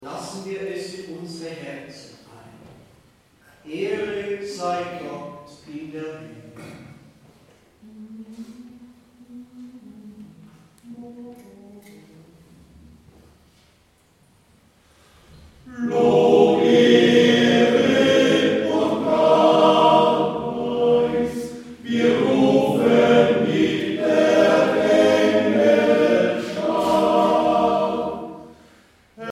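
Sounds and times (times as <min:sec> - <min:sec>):
male choir singing: 0:15.7 - 0:29.3.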